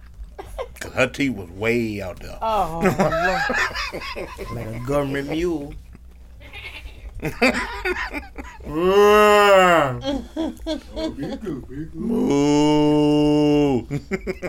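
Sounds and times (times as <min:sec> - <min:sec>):
laughter: 0:00.4 - 0:01.0, 0:02.7 - 0:12.4, 0:13.5 - 0:14.4
speech: 0:01.0 - 0:05.8, 0:07.2 - 0:14.4
person imitating a cow mooing: 0:08.7 - 0:10.0, 0:12.0 - 0:13.9.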